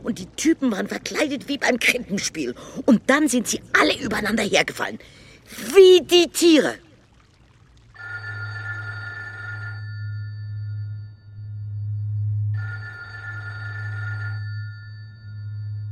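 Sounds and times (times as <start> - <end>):
speech: 0.0 - 6.8
constant low hum: 6.8 - 15.8
telephone ringing in long steady electronic bursts: 8.0 - 11.2, 12.5 - 15.8.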